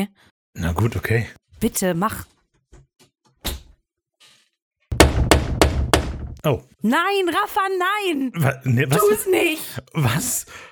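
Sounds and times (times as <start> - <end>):
speech: 0.0 - 2.4, 6.4 - 10.6
heavy door shutting thud: 4.9 - 6.4
rapid loud bangs: 4.9 - 6.4.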